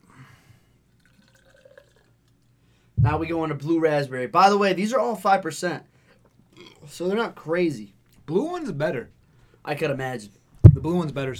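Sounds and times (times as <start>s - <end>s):
sour beer pouring into a glass: 0.9s - 2.2s
speech: 3.0s - 5.9s, 6.8s - 11.3s.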